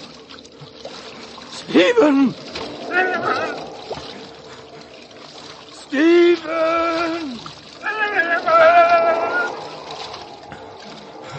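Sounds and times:
jet-black water rushing swiftly in a hissing stream: 0.0 - 11.3
speech: 1.6 - 2.4
person calling out: 1.7 - 3.8, 5.8 - 9.8.

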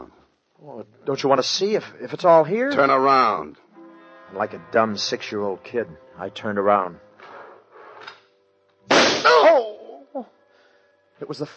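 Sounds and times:
speech: 0.6 - 3.6, 4.3 - 7.0, 10.2 - 10.4, 11.2 - 11.5
loud gunshot: 8.9 - 9.5.

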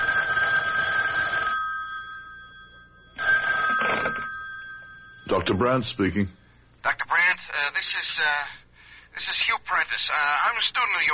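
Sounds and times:
telephone ringing: 0.0 - 8.4
speech: 5.3 - 6.4, 7.8 - 8.6, 9.2 - 11.1.

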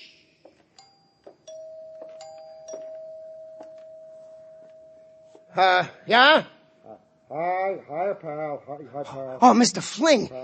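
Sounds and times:
electronic doorbell chiming: 0.6 - 5.9
speech: 5.6 - 6.6, 7.3 - 10.4.

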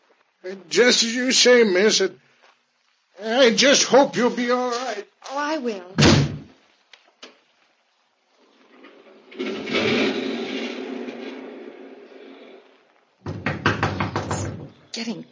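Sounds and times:
speech: 0.4 - 2.2, 3.2 - 6.1, 15.0 - 15.3
door thud: 6.0 - 6.5, 13.2 - 14.8
heavy house door creaking open: 8.4 - 14.8.

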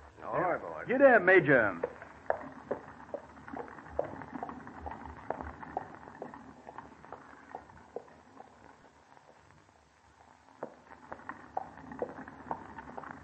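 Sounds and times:
speech: 0.9 - 1.9
horse hooves clip-clopping at a slow uneven pace: 1.6 - 13.2.

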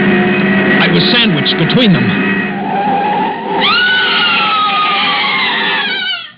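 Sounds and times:
loud steady roar of a car speeding away: 0.0 - 6.2
speech: 1.0 - 2.3
woman's shrill scream sliding downward: 3.6 - 6.3.

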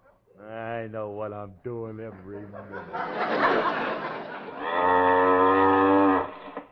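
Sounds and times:
speech: 0.9 - 5.5
laughter: 2.1 - 4.7
cow mooing with rough breathy rumble: 4.6 - 6.6.

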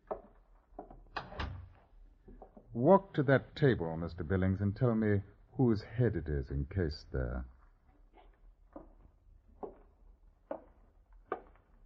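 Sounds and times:
door being pushed shut: 1.1 - 1.8
speech: 2.8 - 7.5.

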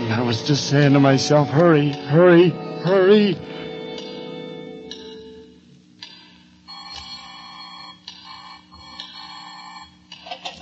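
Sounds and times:
speech: 0.3 - 3.6
old-style telephone bell ringing: 6.7 - 10.1.

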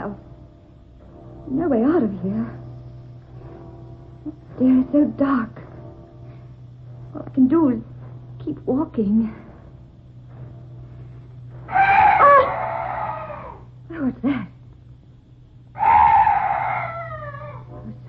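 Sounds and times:
low steady hum: 0.0 - 18.0
speech: 1.5 - 2.6, 4.2 - 5.6, 7.1 - 9.4, 13.9 - 14.6
night birds calling: 11.4 - 13.8, 15.6 - 18.0.

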